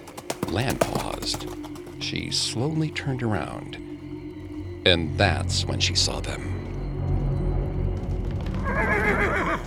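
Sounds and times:
horse hooves clopping: 0:00.0 - 0:09.6
speech: 0:00.5 - 0:03.9, 0:04.8 - 0:06.6
horses whinnying: 0:08.4 - 0:09.6.

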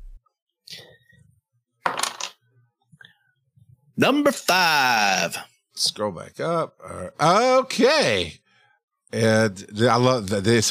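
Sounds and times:
dice clattering and tumbling across a surface: 0:01.8 - 0:02.4
speech: 0:04.0 - 0:08.4, 0:09.1 - 0:10.6.

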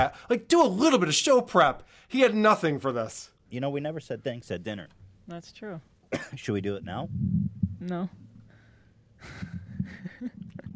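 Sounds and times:
speech: 0:00.0 - 0:08.2, 0:09.2 - 0:10.6
soft low thumps of a microphone being handled: 0:06.7 - 0:08.5, 0:09.3 - 0:10.7
airy breaths blown into a microphone: 0:08.4 - 0:10.0.

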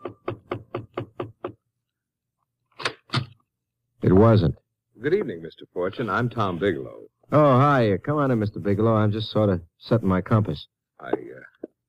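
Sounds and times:
firm knocking on a wooden chamber door: 0:00.0 - 0:01.6
speech: 0:04.1 - 0:11.3.

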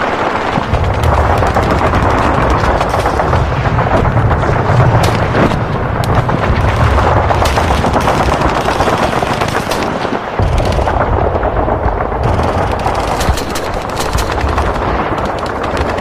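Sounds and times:
deep rumble: 0:00.0 - 0:16.0
warzone explosions: 0:00.0 - 0:16.0
warzone gunfire: 0:00.0 - 0:16.0.

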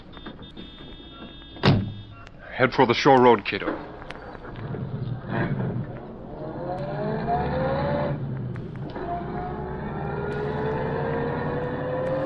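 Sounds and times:
speech: 0:02.6 - 0:03.9
car engine revving as the car pulls out from the curb and accelerates: 0:04.5 - 0:12.2.

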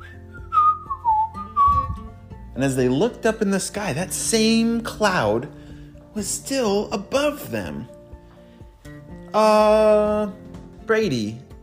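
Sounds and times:
person whistling while hiking: 0:00.0 - 0:02.1
speech: 0:02.6 - 0:05.6, 0:06.2 - 0:08.0, 0:09.3 - 0:11.4.

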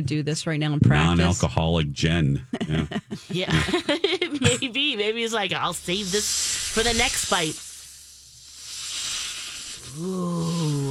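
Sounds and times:
speech: 0:00.0 - 0:07.7, 0:10.0 - 0:10.6
laughter: 0:02.1 - 0:04.8
person imitating a snake hiss with their mouth: 0:05.9 - 0:10.8.

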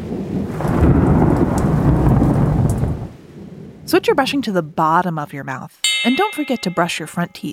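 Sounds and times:
steady rainfall: 0:00.0 - 0:03.2
thunder rumbling in a thunderstorm: 0:00.0 - 0:03.7
speech: 0:03.9 - 0:07.5.

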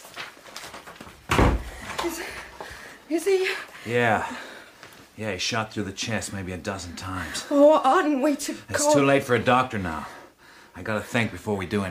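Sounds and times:
quiet room noise: 0:00.0 - 0:11.8
door swinging shut with a solid thud: 0:01.3 - 0:02.0
speech: 0:02.0 - 0:04.5, 0:05.2 - 0:10.2, 0:10.8 - 0:11.8.

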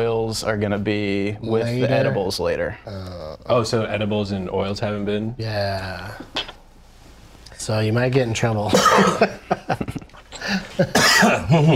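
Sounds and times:
speech: 0:00.3 - 0:06.4, 0:07.6 - 0:09.8, 0:10.8 - 0:11.7
coughing from something caught in the throat: 0:08.7 - 0:09.4, 0:10.4 - 0:11.7.

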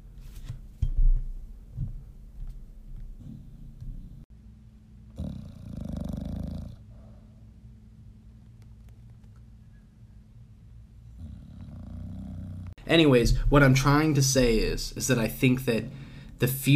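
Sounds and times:
dog snoring: 0:05.1 - 0:07.4, 0:11.1 - 0:12.8
speech: 0:12.9 - 0:16.7.

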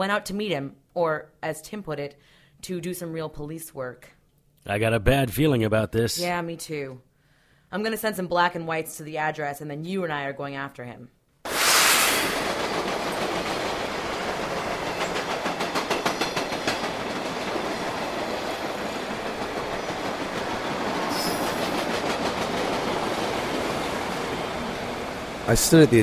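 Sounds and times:
speech: 0:00.0 - 0:07.1, 0:07.7 - 0:11.2, 0:25.5 - 0:26.0
train rumbling past on railroad tracks: 0:11.5 - 0:26.0
train wheels clacking on railroad tracks: 0:12.5 - 0:24.3.

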